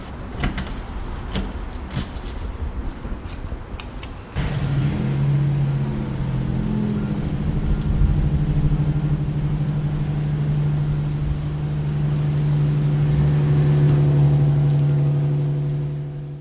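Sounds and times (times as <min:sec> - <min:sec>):
clattering and rattling: 0:00.0 - 0:03.7
university paratransit bus engine rumbling as it arrives and drives: 0:00.0 - 0:16.3.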